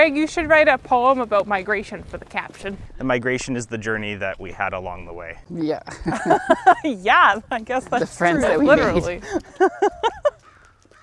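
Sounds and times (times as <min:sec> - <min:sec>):
speech: 0:00.0 - 0:10.3
faint noise: 0:00.0 - 0:11.0
laughter: 0:05.9 - 0:10.4
crow cawing harshly: 0:10.2 - 0:11.0.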